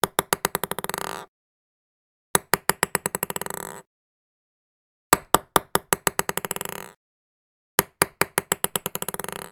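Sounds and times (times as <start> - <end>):
ping-pong ball: 0.0 - 1.3, 2.4 - 3.8, 5.2 - 7.0, 7.8 - 9.5.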